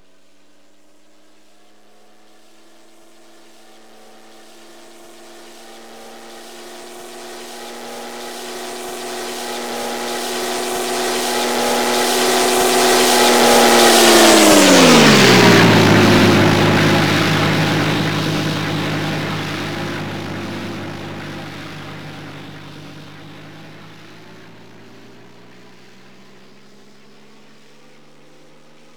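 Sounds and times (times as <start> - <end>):
DB605 aircraft engine flyby: 4.4 - 28.9.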